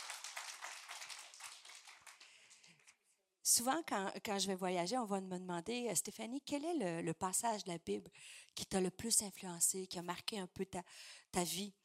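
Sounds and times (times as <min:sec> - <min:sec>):
crowd clapping: 0:00.0 - 0:02.9
speech: 0:03.5 - 0:11.8.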